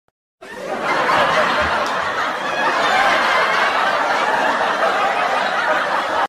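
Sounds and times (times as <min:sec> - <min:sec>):
crowd laughing: 0:00.4 - 0:06.2.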